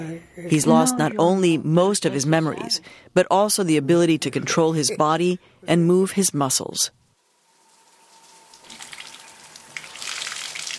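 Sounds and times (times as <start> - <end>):
speech: 0.0 - 7.0
running water from a shower spraying and splashing: 7.1 - 10.7.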